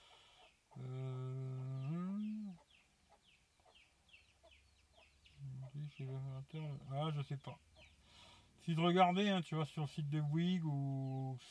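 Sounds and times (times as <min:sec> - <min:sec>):
small hens clucking softly: 0:00.0 - 0:08.0, 0:09.8 - 0:10.7
speech: 0:06.0 - 0:07.7, 0:08.7 - 0:11.4.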